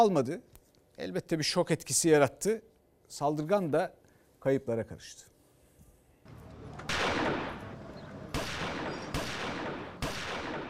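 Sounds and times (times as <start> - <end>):
speech: 0.0 - 5.3
constant noisy background: 0.0 - 10.6
gunshots in an armed attack in Yomra district, Trabzon, Turkey: 6.6 - 10.6.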